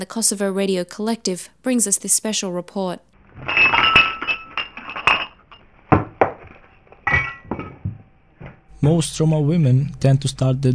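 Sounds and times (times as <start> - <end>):
speech: 0.0 - 3.9, 8.8 - 10.7
glass and cutlery clinking: 3.4 - 8.0
dull thunks of pots and plates set down: 3.4 - 8.6.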